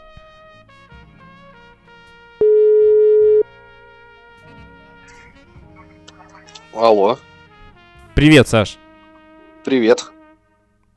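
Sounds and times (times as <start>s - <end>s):
telephone ringback tone while placing a call: 2.4s - 3.4s
speech: 6.8s - 7.3s, 8.2s - 8.8s, 9.7s - 10.1s.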